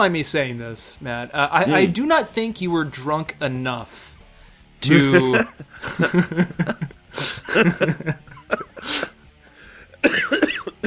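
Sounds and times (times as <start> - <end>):
speech: 0.0 - 4.1, 4.8 - 9.0
laughter: 4.9 - 9.1
fit of repeated harsh coughs ending in a strained throaty rasp: 7.4 - 9.2, 10.0 - 10.8.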